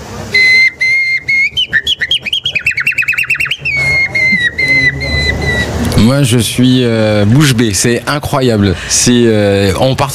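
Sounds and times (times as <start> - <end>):
person whistling an imitation of a nightingale song: 0.3 - 5.8
speech: 6.0 - 10.1.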